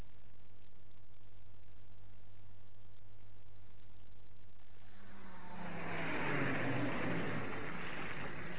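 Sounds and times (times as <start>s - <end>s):
low steady hum: 0.0s - 8.5s
car engine approaching and idling to a stop in rain: 4.6s - 8.5s.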